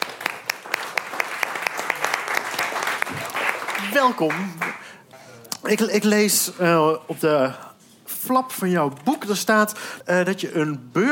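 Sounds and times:
audience applause: 0.0s - 4.9s
speech: 3.9s - 4.6s, 5.6s - 11.1s.

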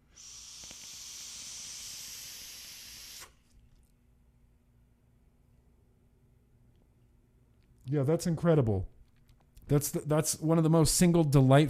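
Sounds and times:
vapour being exhaled from vaping: 0.0s - 3.6s
speech: 7.9s - 8.9s, 9.7s - 11.6s.

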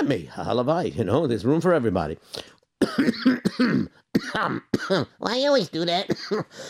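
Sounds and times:
speech: 0.1s - 6.6s
person clearing throat: 2.8s - 5.1s.

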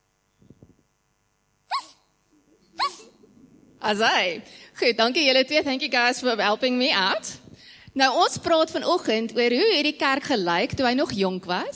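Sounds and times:
two young children imitating a puppy with high-pitched yaps: 1.7s - 2.0s, 2.8s - 3.0s
speech: 3.8s - 7.4s, 8.0s - 11.7s.

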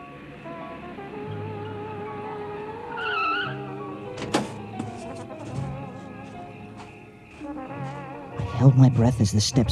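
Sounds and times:
car engine rumbling as the vehicle pulls in: 0.0s - 9.7s
brief high squeal of tires or brakes: 3.0s - 3.6s
speech: 8.6s - 9.7s.

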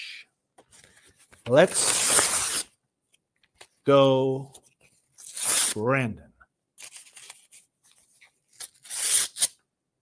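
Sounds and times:
speech: 1.5s - 2.0s, 3.9s - 4.6s, 5.8s - 6.3s
paper copy of a speech being torn up: 1.6s - 2.7s, 5.2s - 5.8s, 8.5s - 9.6s.

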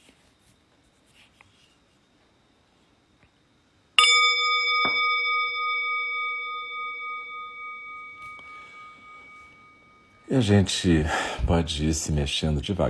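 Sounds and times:
meditation bell struck to end Zazen meditation: 4.0s - 10.8s
speech: 10.3s - 12.8s.

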